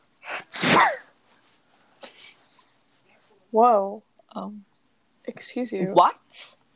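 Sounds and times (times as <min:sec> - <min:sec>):
person faking a sneeze: 0:00.2 - 0:01.2
speech: 0:03.5 - 0:04.7, 0:05.3 - 0:06.6.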